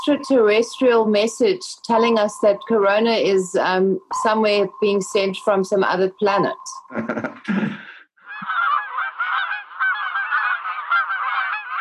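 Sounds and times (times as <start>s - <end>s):
speech: 0.0s - 7.8s
laughter: 6.9s - 7.9s
dense flock of geese honking: 8.3s - 11.7s.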